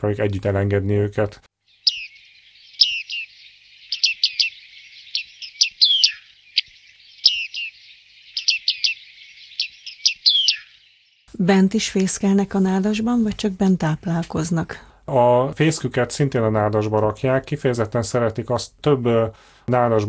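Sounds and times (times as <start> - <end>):
speech: 0.0 - 1.5, 11.4 - 20.0
bearded reedling Panurus biarmicus calls: 1.6 - 11.3.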